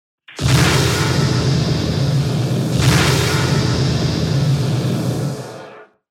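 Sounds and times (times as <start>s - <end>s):
fire element spell sound effect: 0.4s - 6.0s.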